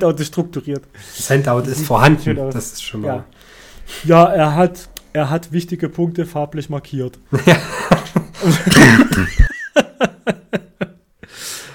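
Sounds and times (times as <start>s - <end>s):
speech: 0.0s - 9.5s
laughter: 7.3s - 11.0s
person coughing fit with hacking: 8.4s - 9.6s
wheezy gasp for breath: 11.2s - 11.7s.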